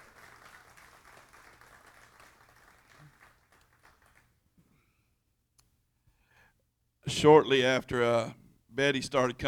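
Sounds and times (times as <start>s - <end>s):
crowd applauding: 0.0s - 4.4s
faint noise: 0.0s - 9.4s
speech: 7.1s - 9.4s.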